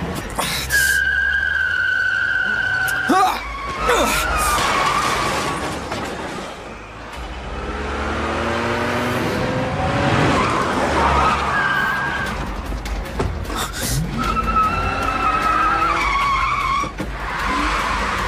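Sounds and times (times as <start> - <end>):
car tires skidding and squealing: 0.6 - 7.5, 8.2 - 12.8, 13.8 - 18.2
car engine roaring and revving: 1.0 - 18.2.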